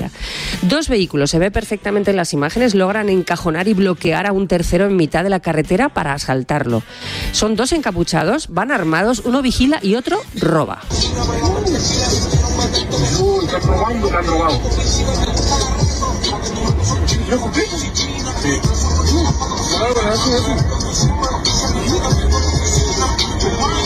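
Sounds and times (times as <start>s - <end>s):
loud music with vocals inside a moving car: 0.0s - 23.8s
speech: 0.6s - 15.8s, 17.3s - 23.8s
steady low road and engine rumble on the A92 motorway: 10.8s - 23.8s.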